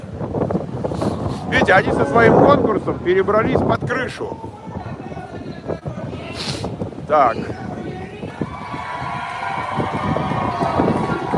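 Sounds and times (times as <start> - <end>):
strong wind buffeting the microphone: 0.0 - 11.3
speech: 1.6 - 4.6, 7.1 - 7.6.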